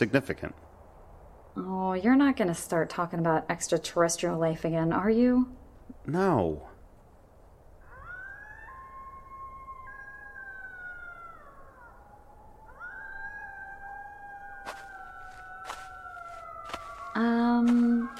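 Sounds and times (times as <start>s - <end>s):
speech: 0.0s - 0.7s, 1.6s - 6.7s
coyotes howling at night: 7.8s - 18.1s.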